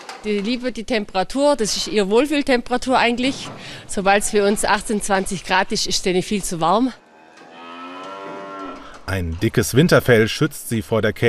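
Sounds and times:
speech: 0.2 - 7.0, 9.1 - 11.2
cow mooing in a barn in icy cold weather: 7.0 - 9.6.

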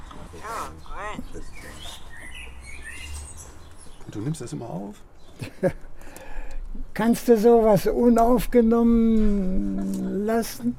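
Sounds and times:
birds chirping in a tree: 0.0 - 7.0
speech: 0.4 - 2.0, 4.1 - 5.8, 7.0 - 10.7
laughter: 5.4 - 5.9.

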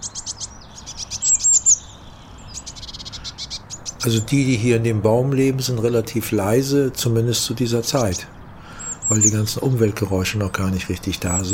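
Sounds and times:
tits chirping outdoors in a tree in the morning: 0.0 - 11.5
speech: 4.0 - 8.4, 9.1 - 11.5
louder whistled phrase of tits: 11.3 - 11.5.

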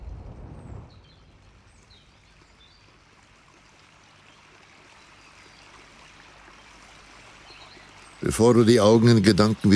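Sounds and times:
brief low rumble: 0.0 - 1.7
small brook babbling and trickling: 1.0 - 9.7
speech: 8.2 - 9.7.

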